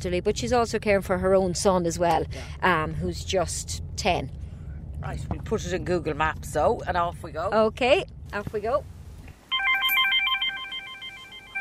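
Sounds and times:
speech: 0:00.0 - 0:04.4, 0:05.0 - 0:08.9
phone ringing with rapid warbling electronic trill: 0:09.5 - 0:11.5.

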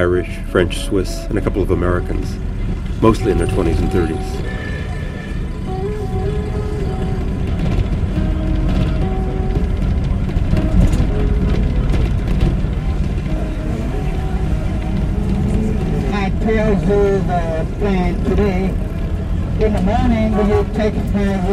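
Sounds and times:
speech: 0:00.0 - 0:04.6, 0:16.9 - 0:18.9, 0:19.6 - 0:21.5
tour bus engine rumble driving on road: 0:00.0 - 0:21.5
clatter: 0:05.7 - 0:21.5.

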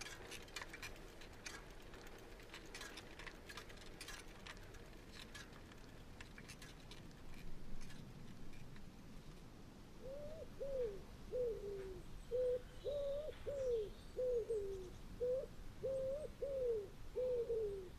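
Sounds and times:
doves cooing in the woods: 0:10.0 - 0:17.9.

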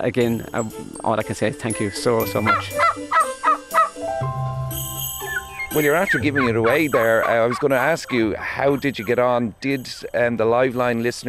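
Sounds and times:
speech: 0:00.0 - 0:03.2, 0:05.7 - 0:11.2
turkeys gobbling on a home holding: 0:02.2 - 0:04.0, 0:05.2 - 0:09.3.

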